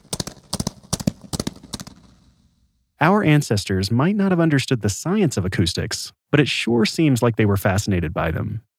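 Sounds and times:
horse hooves galloping with echo off walls: 0.0 - 2.5
speech: 3.0 - 8.7.

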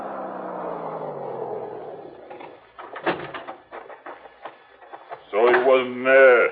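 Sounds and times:
wooden shack door creaking open: 2.3 - 3.8
wooden shack door rattling and thumping shut: 2.4 - 4.2
person speaking: 5.3 - 6.4.

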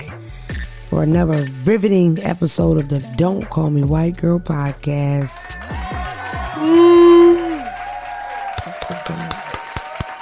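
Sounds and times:
speech: 0.9 - 5.4, 6.6 - 6.9
tonal swoop: 6.6 - 7.6
hand claps: 7.1 - 10.2.

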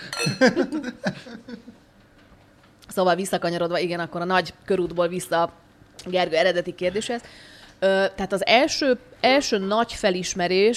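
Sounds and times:
glasses clinking together in a toast: 0.0 - 0.6
laughter: 0.2 - 1.8
speech: 0.2 - 1.8, 2.9 - 10.7.

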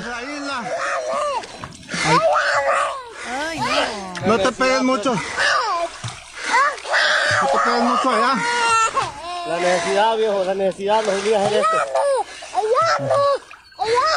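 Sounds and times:
water splashing as a family crosses a river: 0.0 - 14.1
child crying while a family crosses a river: 0.7 - 4.1, 5.4 - 10.0, 11.4 - 14.1
speech: 4.2 - 5.5, 7.6 - 12.1, 13.0 - 14.1.

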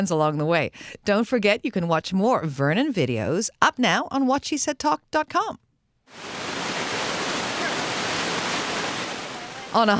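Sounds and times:
speech: 0.0 - 6.4, 9.7 - 9.9
rushing creek water: 6.1 - 9.9.

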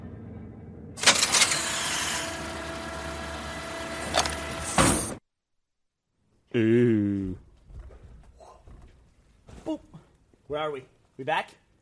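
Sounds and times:
steady dropship engine hum: 0.9 - 4.7
dropship bay door opening with mechanical hiss and whir: 1.0 - 5.2
speech: 6.6 - 6.8, 10.6 - 11.6.

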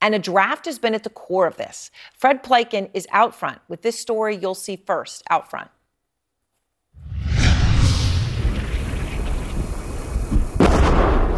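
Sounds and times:
speech: 0.0 - 5.8
heavy rumble of explosion: 7.0 - 10.1
explosions on a battlefield: 7.0 - 11.3.

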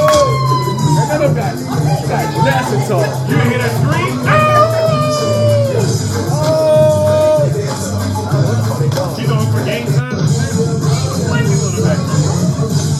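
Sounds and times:
shrill wavering screams: 0.0 - 1.3, 4.4 - 7.2
loud dense crowd din: 0.0 - 12.9.

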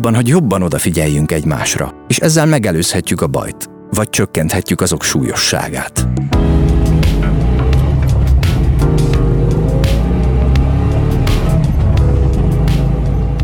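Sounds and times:
speech: 0.0 - 6.6
Trabant car engine droning while driving on snowy winter roads: 6.4 - 13.4
rattling of Trabant car driving on winter road: 6.4 - 13.4.

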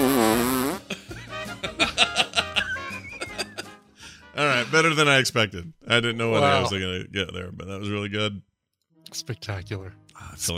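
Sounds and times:
buzzy fart noises with wobbling pitch and sputtering bursts: 0.0 - 0.9
laughter: 0.9 - 3.8
speech: 4.7 - 8.5, 9.1 - 10.5.

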